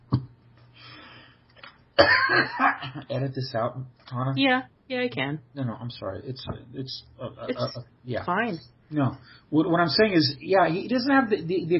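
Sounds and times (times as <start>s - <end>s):
person with a lingering cough coughing harshly: 2.0s - 3.1s
speech: 2.0s - 11.7s.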